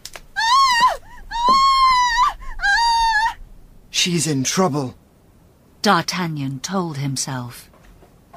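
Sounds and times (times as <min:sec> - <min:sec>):
young woman screaming after going into a house: 0:00.3 - 0:03.4
speech: 0:04.0 - 0:05.0, 0:05.8 - 0:07.7.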